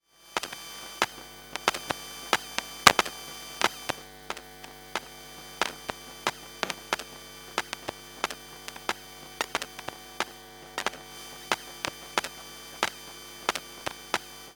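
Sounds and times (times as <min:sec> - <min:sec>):
long buzzing from a power glitch: 0:00.4 - 0:14.5
soft popping from a power glitch: 0:01.6 - 0:11.0.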